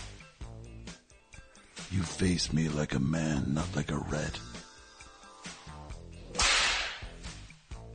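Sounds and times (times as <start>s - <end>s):
music: 0.0s - 7.9s
speech: 1.9s - 4.5s
whip crack: 6.3s - 7.4s.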